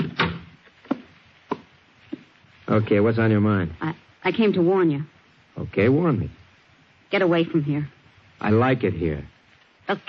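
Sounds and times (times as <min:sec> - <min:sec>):
door being pushed shut: 0:00.0 - 0:00.5
speech: 0:02.7 - 0:06.4, 0:07.1 - 0:09.3, 0:09.9 - 0:10.0.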